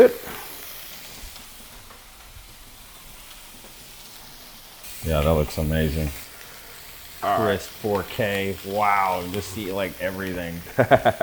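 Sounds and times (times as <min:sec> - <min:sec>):
speech: 0:00.0 - 0:00.3, 0:05.0 - 0:06.2, 0:07.2 - 0:11.2
laughter: 0:00.0 - 0:00.6, 0:07.2 - 0:11.2
shrimp sizzling with butter in a pan: 0:00.0 - 0:11.2.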